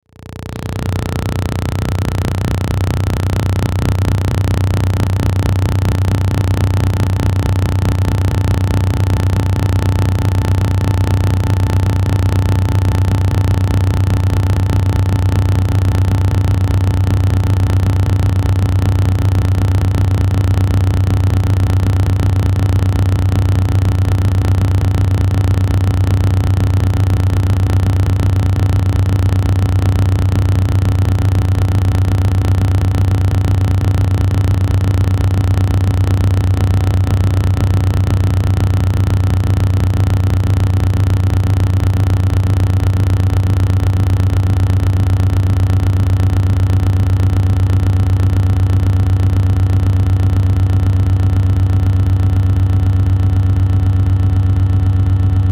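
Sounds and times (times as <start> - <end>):
chopped static with reverb: 0.0 - 55.2
pulsing drone: 0.1 - 22.9.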